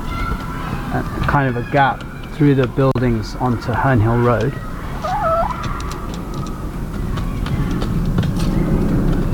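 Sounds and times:
steady low rumble of road traffic from surrounding roads in London: 0.0s - 9.3s
speech: 0.9s - 4.7s
bird call in urban park in London: 4.8s - 5.9s.

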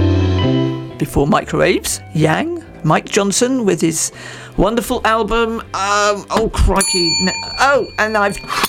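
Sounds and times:
person speaking loudly: 1.0s - 8.5s
speech: 1.0s - 8.6s
bell ringing: 6.8s - 8.6s.

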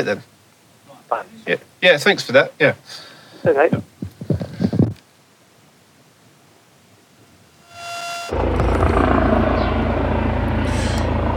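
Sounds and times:
speech: 0.0s - 0.3s, 1.1s - 4.0s
helicopter turbine whine: 7.6s - 11.3s
police helicopter hovering: 7.7s - 11.3s.

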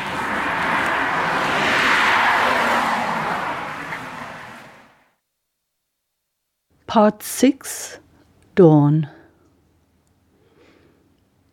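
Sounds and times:
single car passing on an outback road at daybreak: 0.0s - 5.2s
speech: 6.9s - 8.0s, 8.6s - 9.2s.

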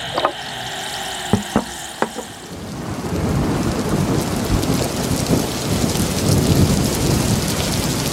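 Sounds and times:
heavy rain in a thunderstorm: 0.0s - 8.1s
deep rolling thunder: 2.2s - 8.1s.

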